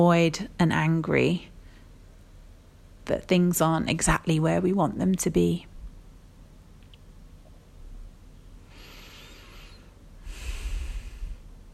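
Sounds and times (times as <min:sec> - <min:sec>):
speech: 0:00.0 - 0:01.5, 0:03.1 - 0:05.7
slow deep breath taken during a calm guided exercise: 0:08.6 - 0:11.5.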